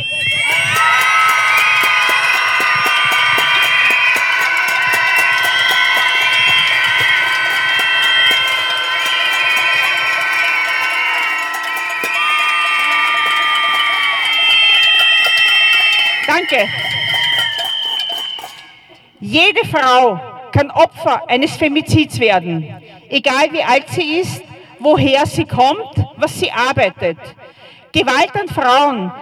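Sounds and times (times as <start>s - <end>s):
protest crowd screaming together: 0.0s - 19.0s
speech: 16.5s - 16.8s, 19.3s - 29.1s.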